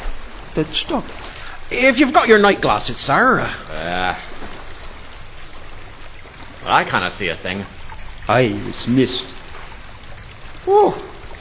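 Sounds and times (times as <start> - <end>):
running water rushing near a ship's bow: 0.0 - 11.4
speech: 0.6 - 4.3, 6.6 - 9.4, 10.6 - 11.1.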